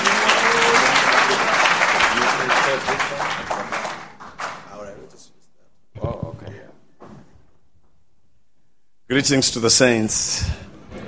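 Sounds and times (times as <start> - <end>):
sizable crowd applauding for a church elder: 0.0 - 4.9
speech: 9.1 - 10.7.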